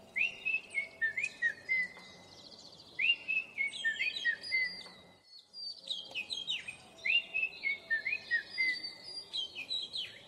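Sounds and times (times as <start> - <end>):
oriental magpie-robin singing: 0.0 - 10.2.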